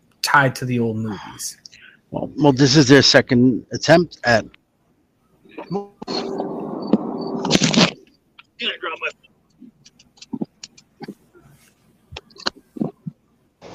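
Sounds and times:
speech: 0.3s - 4.6s, 5.7s - 6.3s
phone dropped and fumbled: 6.0s - 8.0s.

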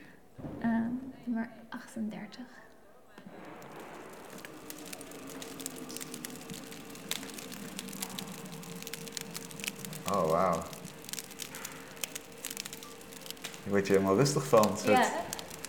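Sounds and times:
speech: 1.3s - 2.7s, 10.1s - 10.7s, 13.7s - 15.2s
crusty bread rolls crackling fresh from the oven: 3.2s - 15.6s.

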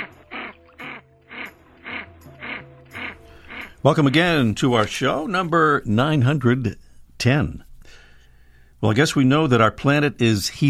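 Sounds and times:
canvasback duck raspy calls: 0.0s - 5.4s
speech: 3.8s - 7.7s, 8.8s - 10.6s.

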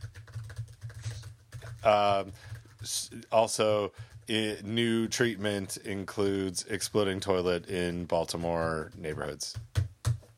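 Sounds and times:
typing on a computer keyboard: 0.0s - 2.9s, 3.9s - 4.3s, 8.8s - 10.3s
speech: 1.8s - 9.7s.

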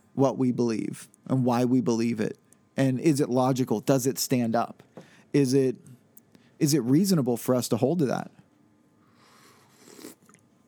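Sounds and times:
speech: 0.2s - 5.9s, 6.6s - 8.4s
person slurping a sip of hot coffee: 9.8s - 10.4s.

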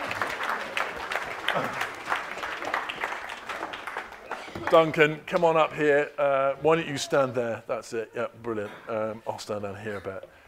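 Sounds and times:
audience applause: 0.0s - 5.1s
speech: 4.7s - 10.4s.

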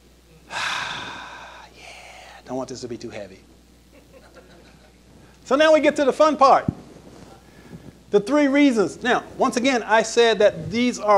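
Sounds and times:
lecture audience taking a deep breath: 0.5s - 2.4s
speech: 2.5s - 3.6s, 5.5s - 6.8s, 8.1s - 11.1s
laughter: 3.9s - 5.0s.

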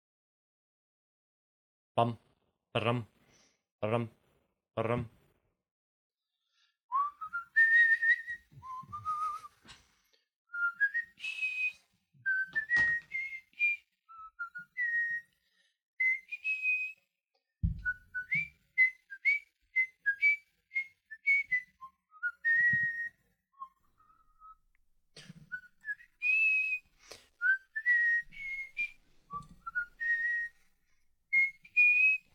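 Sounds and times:
speech: 2.0s - 2.2s, 2.8s - 3.1s, 3.8s - 4.2s, 4.8s - 5.2s
person whistling a melodic tune: 6.9s - 9.7s, 10.5s - 24.6s, 25.4s - 32.3s.

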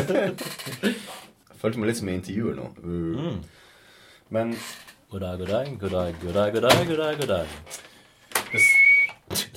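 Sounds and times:
laughter: 0.0s - 0.9s
speech: 0.1s - 3.6s, 4.3s - 7.9s, 8.5s - 9.5s
person whistling a short steady intro note: 8.5s - 9.2s.

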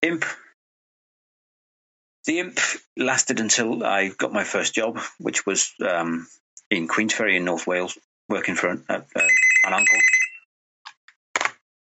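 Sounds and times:
speech: 0.0s - 0.4s, 2.3s - 10.2s
short electronic phone ring chirping: 9.2s - 10.5s.

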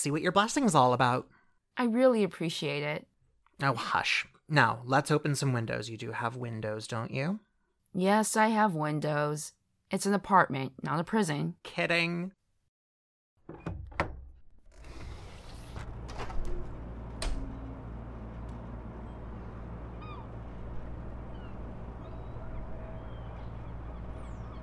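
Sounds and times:
speech: 0.0s - 12.4s
outdoor hum of traffic: 15.3s - 24.6s
wind: 16.8s - 24.6s
seagull calls: 17.5s - 24.6s.

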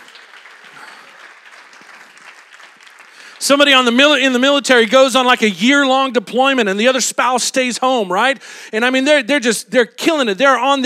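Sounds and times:
audience applause for military spouses: 0.0s - 4.4s
speech: 3.4s - 10.8s.

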